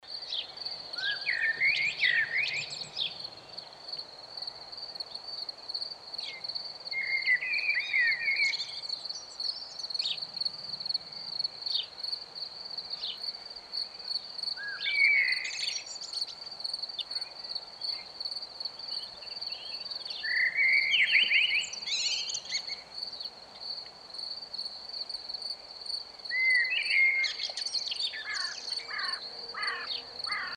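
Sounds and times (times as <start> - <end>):
crickets chirping on a summer evening: 0.1 - 30.5
birds singing on a summer evening: 0.2 - 3.7, 6.2 - 10.3, 14.6 - 16.4, 18.8 - 23.3, 26.3 - 30.5.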